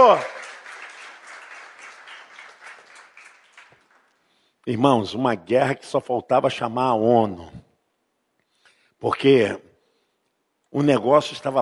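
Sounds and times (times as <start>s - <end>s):
speech: 0.0s - 0.4s, 4.7s - 7.7s, 9.0s - 9.7s, 10.7s - 11.6s
crowd applauding: 0.0s - 4.3s.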